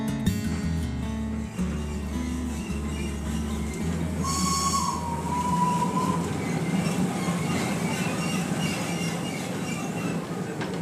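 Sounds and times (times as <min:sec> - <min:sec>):
steam locomotive on cog railway rumbling: 0:00.2 - 0:10.8
steam locomotive shrill whistle blast: 0:04.2 - 0:09.4.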